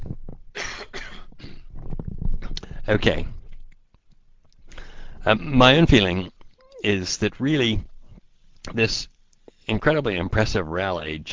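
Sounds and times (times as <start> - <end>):
harsh raspy coughs: 0.6 - 1.7
breathy throat sounds: 0.8 - 2.9, 4.6 - 5.3
speech: 2.9 - 3.4, 5.2 - 7.9, 8.6 - 9.1, 9.7 - 11.3.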